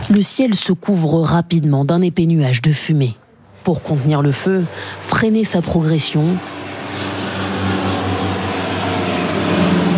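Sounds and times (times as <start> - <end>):
speech: 0.1 - 7.1
Canadair water-bomber planes and Chinook heavy helicopter engine drone over forest fire: 3.2 - 9.9.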